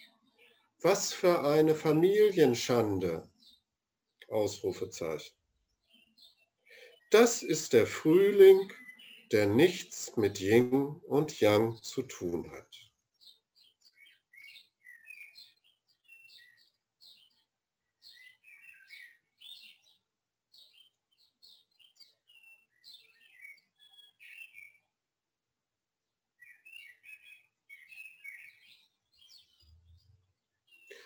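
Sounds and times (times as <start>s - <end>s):
birds singing outdoors: 0.0s - 25.1s, 26.3s - 31.0s
speech: 0.8s - 3.3s, 4.3s - 5.4s, 7.1s - 12.8s.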